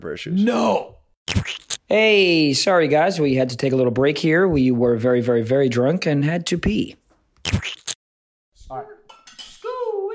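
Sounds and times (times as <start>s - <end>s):
speech: 0.0s - 7.0s
glasses clinking in a toast: 9.1s - 9.8s.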